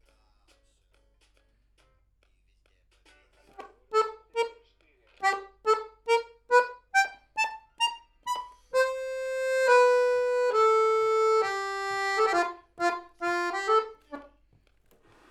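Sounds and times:
accordion main part: 0:03.6 - 0:04.6, 0:05.2 - 0:14.4.

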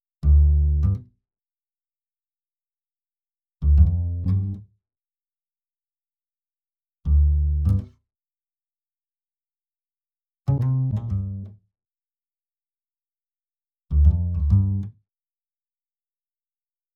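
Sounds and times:
double bass: 0:00.2 - 0:01.1, 0:03.6 - 0:04.7, 0:07.0 - 0:08.0, 0:10.5 - 0:11.6, 0:13.9 - 0:15.0.

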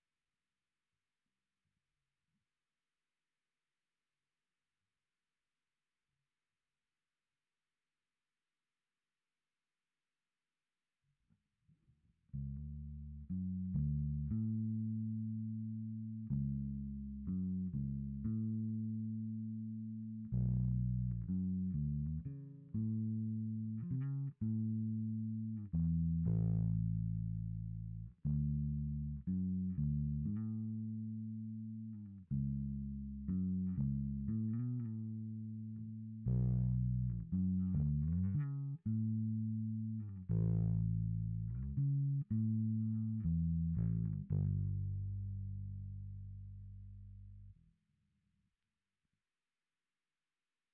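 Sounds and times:
bass guitar through SansAmp: 0:12.3 - 0:47.6.

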